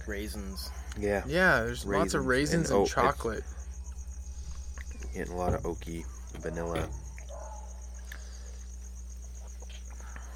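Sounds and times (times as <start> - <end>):
crickets chirping outdoors in backyard: 0.0 - 10.3
low hum: 0.0 - 10.3
speech: 0.1 - 3.7, 5.2 - 7.1
soft knocks: 3.9 - 7.7.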